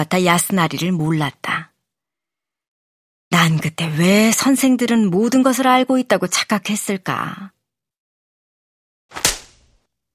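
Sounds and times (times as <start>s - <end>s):
speech: 0.0s - 1.7s, 3.4s - 7.6s
sharp slap to the face: 9.1s - 9.8s.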